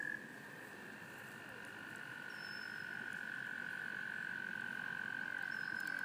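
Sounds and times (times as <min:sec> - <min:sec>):
toads: 0:00.0 - 0:06.0
birds singing: 0:02.2 - 0:03.1, 0:05.4 - 0:06.0.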